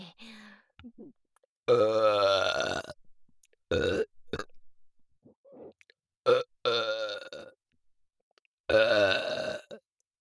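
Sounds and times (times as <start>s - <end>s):
loud drawn-out burps: 1.7s - 3.0s, 3.7s - 4.6s, 6.2s - 7.6s, 8.7s - 9.8s.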